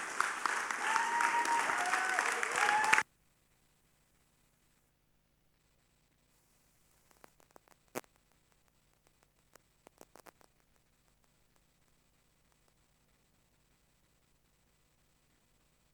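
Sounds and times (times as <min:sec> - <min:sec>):
audience whistles and cheers: 0:00.0 - 0:03.0
crowd applauding loudly: 0:00.0 - 0:03.0
faint clicks: 0:07.0 - 0:12.8.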